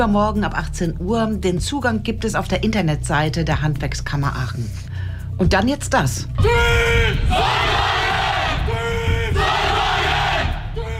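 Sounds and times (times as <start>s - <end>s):
speech: 0.0s - 7.5s
student solar car racing team shouting its battle cry: 6.5s - 10.9s.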